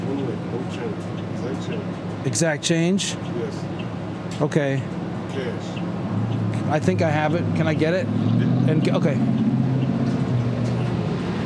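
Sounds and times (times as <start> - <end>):
city bus engine drone heard onboard: 0.0 - 11.4
speech: 1.7 - 3.7, 4.4 - 5.8, 6.7 - 9.5.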